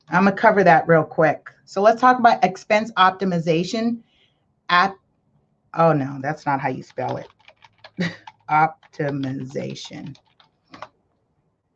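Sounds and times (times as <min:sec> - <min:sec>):
speech: 0:00.1 - 0:04.1, 0:04.7 - 0:05.0, 0:05.7 - 0:07.4, 0:08.0 - 0:10.9
soft clicks from a computer keyboard: 0:06.9 - 0:11.0.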